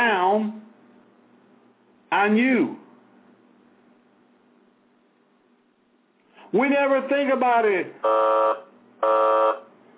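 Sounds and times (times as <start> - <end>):
speech: 2.1 - 2.8, 6.5 - 9.6
harsh electronic alarm buzzer blaring: 8.0 - 9.9.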